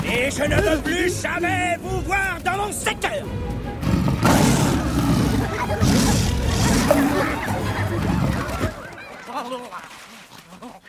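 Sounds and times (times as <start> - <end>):
speech: 0.2 - 4.0
lion roaring: 3.8 - 8.9
laughter: 4.8 - 10.8.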